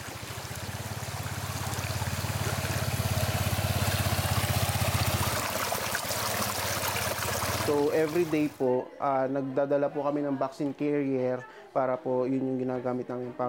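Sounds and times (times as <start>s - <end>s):
water rushing in a stony river: 0.0s - 8.6s
speech: 7.7s - 13.4s.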